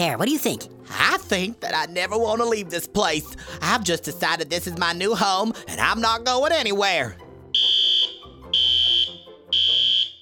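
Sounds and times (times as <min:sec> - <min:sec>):
speech: 0:00.0 - 0:07.2
alarm beeping: 0:07.6 - 0:10.2.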